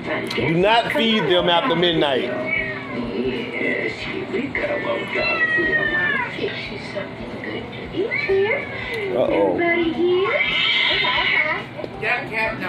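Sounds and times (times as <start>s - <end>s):
speech: 0.3s - 2.6s, 3.2s - 11.4s, 12.0s - 12.6s
cat meowing: 2.2s - 3.3s, 5.0s - 6.5s, 10.2s - 11.6s.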